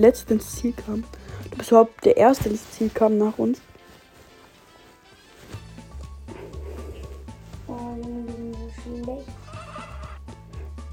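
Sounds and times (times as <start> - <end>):
speech: 0.0 - 3.7
steady busy video game backdrop: 0.0 - 10.9
cartoonish chicken calls from a video game: 9.4 - 10.3.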